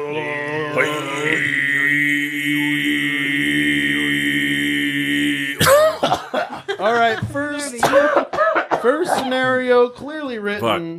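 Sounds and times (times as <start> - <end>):
person imitating Mongolian throat singing by coughing: 0.0 - 6.4
speech: 0.1 - 1.7, 6.8 - 8.2, 8.8 - 10.9
rough cough-like bursts: 5.6 - 6.7, 7.8 - 9.3.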